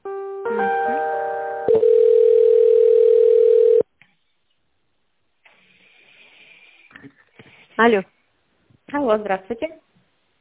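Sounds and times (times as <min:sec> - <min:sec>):
telephone tone while a call is transferred to the accounting department: 0:01.7 - 0:03.8
speech: 0:07.8 - 0:08.2, 0:08.9 - 0:09.8.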